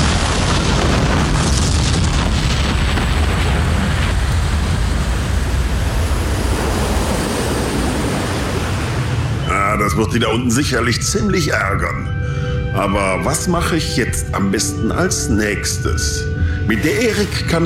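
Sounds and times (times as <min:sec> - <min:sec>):
crackling debris from spaceship explosion: 0:00.0 - 0:06.5
huge spaceship explosion: 0:00.0 - 0:10.0
speech: 0:10.0 - 0:17.6.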